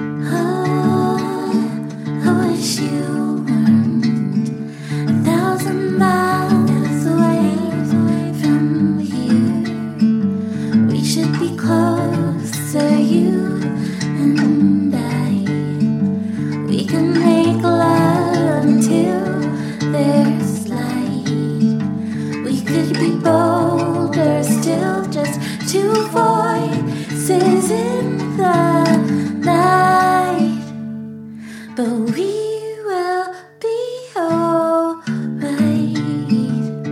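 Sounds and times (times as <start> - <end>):
person singing: 0.2 - 30.8, 31.6 - 36.8.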